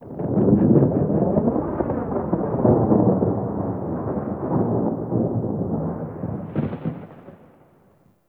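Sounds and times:
thunder: 0:00.0 - 0:08.1.

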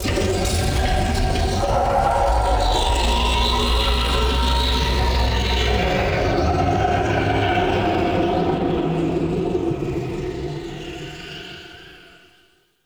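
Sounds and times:
scream in a chasm: 0:00.0 - 0:12.2.

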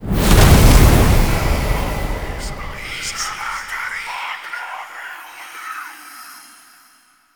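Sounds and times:
firelight activation game ambience: 0:00.0 - 0:03.6.

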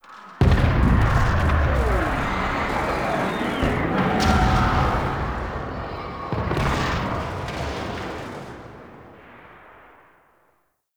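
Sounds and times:
distant battle ambience: 0:00.0 - 0:10.5.

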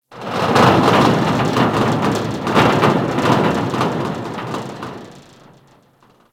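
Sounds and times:
ship rattling: 0:00.0 - 0:06.3.

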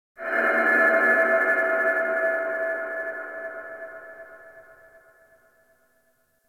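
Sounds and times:
space battle ambience: 0:00.2 - 0:05.3.

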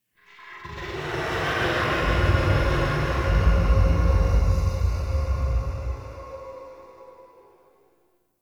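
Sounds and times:
exhale ambience in a small interior: 0:01.9 - 0:08.1.

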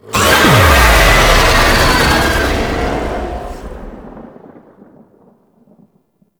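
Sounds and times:
boss enemy vocal transition stinger: 0:00.1 - 0:04.2.

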